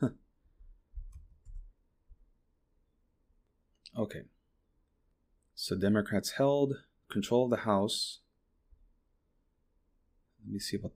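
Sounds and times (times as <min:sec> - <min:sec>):
speech: 0:00.0 - 0:00.2, 0:04.0 - 0:04.4, 0:05.6 - 0:08.2, 0:10.4 - 0:10.9
typing on a keyboard: 0:01.0 - 0:01.7.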